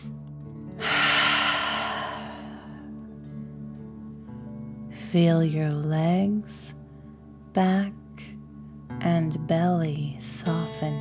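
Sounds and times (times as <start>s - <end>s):
deep breath in and out through the mouth during a breathing exercise: 0.7s - 3.0s
speech: 5.1s - 6.8s, 7.6s - 8.3s, 9.0s - 11.0s.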